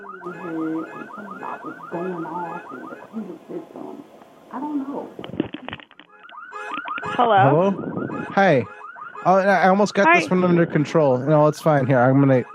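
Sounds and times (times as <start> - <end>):
car alarm on a fairly new car blaring: 0.0 - 3.5, 6.0 - 12.5
speech: 0.2 - 5.6, 7.2 - 12.5.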